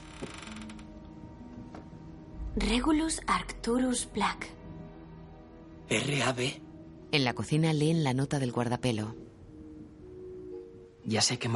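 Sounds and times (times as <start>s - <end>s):
door creaking as it is moved in a ransacked room: 0.0s - 1.9s
speech: 2.6s - 4.6s, 5.9s - 9.2s, 11.1s - 11.5s.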